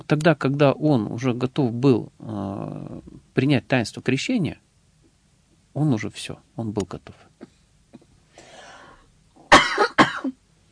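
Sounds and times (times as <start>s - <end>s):
speech: 0.1s - 4.6s, 5.8s - 7.5s
person coughing: 9.5s - 10.4s.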